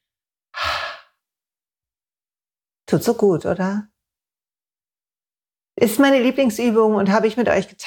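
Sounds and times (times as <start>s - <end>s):
deep breathy exhale during a breathing exercise: 0.6s - 1.2s
speech: 2.9s - 3.9s, 5.8s - 7.8s.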